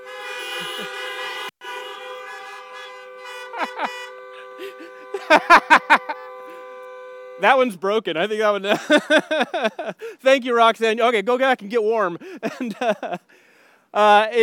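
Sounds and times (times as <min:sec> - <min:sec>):
several car horns honking: 0:00.0 - 0:09.9
speech: 0:00.6 - 0:01.0, 0:05.3 - 0:05.8, 0:07.4 - 0:14.4
laughter: 0:03.5 - 0:04.0, 0:04.6 - 0:06.4, 0:08.7 - 0:10.0, 0:12.2 - 0:13.2.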